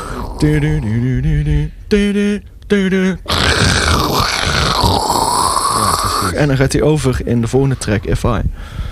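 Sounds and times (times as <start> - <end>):
deep groaning vocal bursts: 0.0 - 1.8, 3.2 - 6.8
loud steady tape hiss: 0.0 - 8.9
speech: 0.4 - 3.8, 6.2 - 8.9.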